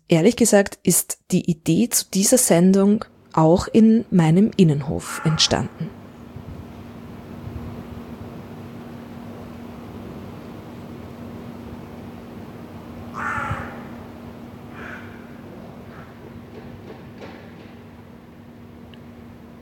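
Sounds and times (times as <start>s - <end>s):
hum: 0.0s - 19.6s
speech: 0.1s - 5.9s
crows cawing in a courtyard: 5.0s - 6.0s, 13.1s - 14.1s, 14.7s - 16.2s.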